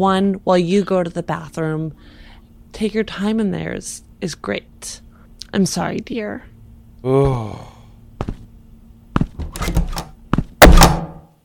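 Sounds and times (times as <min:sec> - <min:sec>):
speech: 0:00.0 - 0:08.4
footsteps of someone walking out of a room: 0:08.2 - 0:08.5, 0:09.2 - 0:10.6
door shutting with a rattle: 0:09.2 - 0:11.1.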